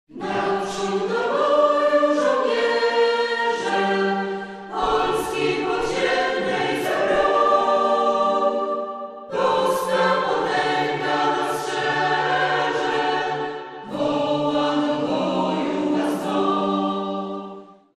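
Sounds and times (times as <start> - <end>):
a cappella singing: 0.1 - 17.9.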